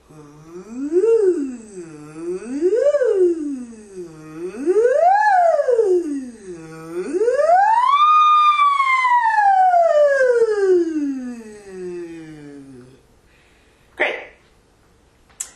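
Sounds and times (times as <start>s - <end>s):
voice siren glides as a vocal exercise: 0.5s - 12.8s.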